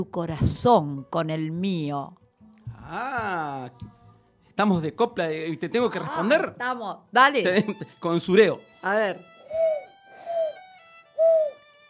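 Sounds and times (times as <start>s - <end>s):
speech: 0.0s - 2.2s, 2.9s - 4.0s, 4.6s - 9.3s
laughter: 7.5s - 8.0s
person imitating dove cooing: 9.5s - 10.6s, 11.2s - 11.5s.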